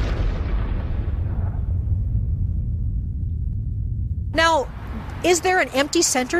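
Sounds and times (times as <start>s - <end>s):
heavy bomb explosion: 0.0s - 5.0s
deep sustained rumble: 0.0s - 5.6s
speech: 4.5s - 6.3s.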